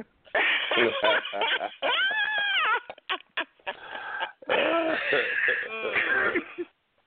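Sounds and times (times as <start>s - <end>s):
laughter: 0.4s - 5.3s
person clearing throat and gargling: 4.5s - 6.7s.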